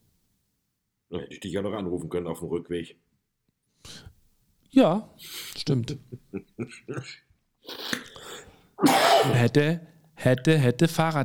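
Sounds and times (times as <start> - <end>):
speech: 1.1 - 3.1, 4.8 - 7.8, 8.8 - 11.2
laughter: 5.7 - 7.3
loud harsh vocal burst: 8.8 - 9.6
person coughing: 8.8 - 9.6
raspy throat clearing: 8.8 - 9.6.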